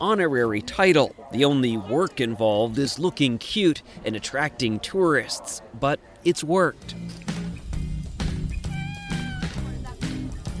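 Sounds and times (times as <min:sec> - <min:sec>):
speech: 0:00.0 - 0:07.3
busy rhythmic music with regular percussive hits: 0:06.8 - 0:10.5
cat meowing on Cat Island: 0:08.6 - 0:09.7.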